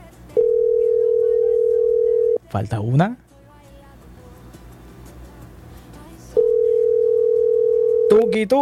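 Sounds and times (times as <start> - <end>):
telephone line tone while a call to a listener is placed: 0.4 - 2.4, 6.3 - 8.4
speech: 2.5 - 3.2, 8.4 - 8.6.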